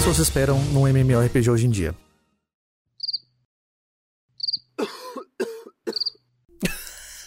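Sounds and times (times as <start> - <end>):
speech: 0.1 - 2.1
cricket chirping with short high trills: 3.0 - 3.3, 4.4 - 4.7, 5.9 - 6.2
person coughing or throat-clearing: 4.8 - 7.2.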